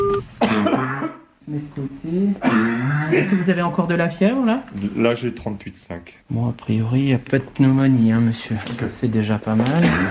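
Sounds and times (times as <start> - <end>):
man ill with fever and diarrhoea coughing: 0.4 - 1.3, 2.4 - 3.5, 9.7 - 10.0
speech: 1.5 - 10.0.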